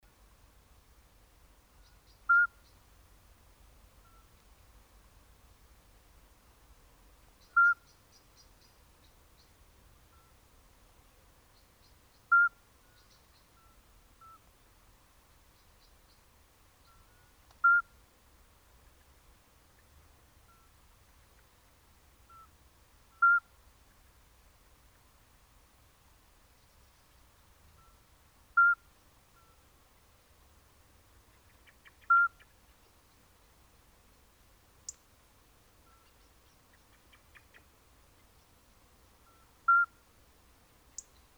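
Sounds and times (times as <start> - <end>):
Iberian midwife toad Alytes cisternasii calling: 1.8 - 2.7, 7.4 - 8.5, 16.8 - 17.9, 23.1 - 23.5, 28.6 - 29.6, 31.5 - 32.6, 39.3 - 40.0, 40.9 - 41.2.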